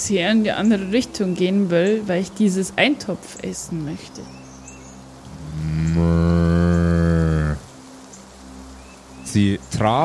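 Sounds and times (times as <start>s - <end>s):
faint noise: 0.0s - 10.0s
speech: 0.1s - 4.4s, 9.4s - 10.0s
cow mooing in a long loud bellow: 5.3s - 7.7s.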